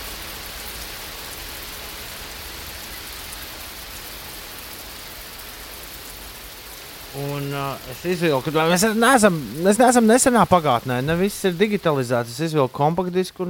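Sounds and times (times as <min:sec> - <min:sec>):
steady dense rainfall: 0:00.0 - 0:13.4
speech: 0:07.1 - 0:13.4.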